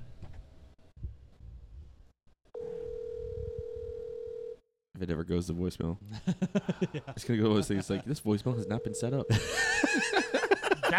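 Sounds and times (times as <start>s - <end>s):
telephone tone from a call being placed: 2.6s - 4.6s, 8.6s - 9.5s
speech: 5.0s - 10.9s
laughter: 6.1s - 8.4s, 9.3s - 10.9s.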